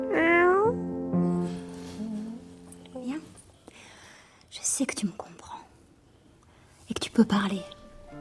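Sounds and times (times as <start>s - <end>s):
cat meowing: 0.1s - 0.8s
speech: 4.8s - 5.3s, 7.2s - 7.8s.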